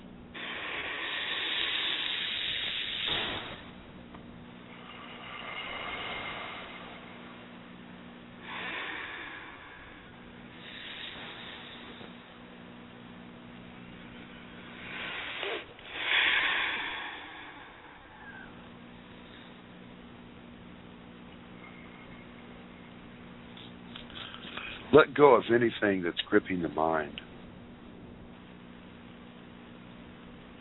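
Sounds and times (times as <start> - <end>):
faint low hum: 0.0 - 30.5
slow deep breathing during a guided relaxation: 0.3 - 3.9, 4.6 - 20.4, 21.4 - 25.0
speech: 25.0 - 27.3.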